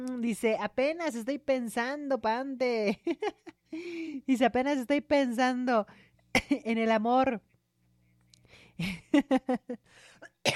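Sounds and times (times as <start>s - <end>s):
speech: 0.2s - 7.5s, 8.8s - 10.5s
person coughing: 6.3s - 6.7s, 10.2s - 10.5s.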